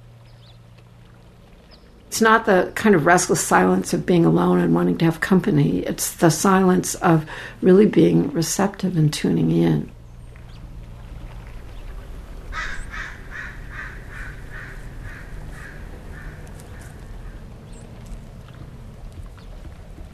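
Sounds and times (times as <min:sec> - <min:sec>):
steady low rumble of noise: 0:00.0 - 0:20.1
speech: 0:02.1 - 0:10.0
bird giving harsh rhythmic calls near its nest: 0:11.7 - 0:18.1.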